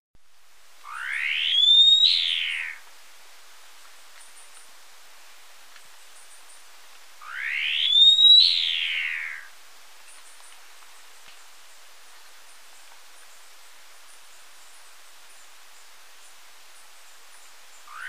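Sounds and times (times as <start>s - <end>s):
swallow-tailed nightjar whistling in Ecuador: 0.8s - 2.8s, 7.2s - 9.5s, 17.8s - 18.0s.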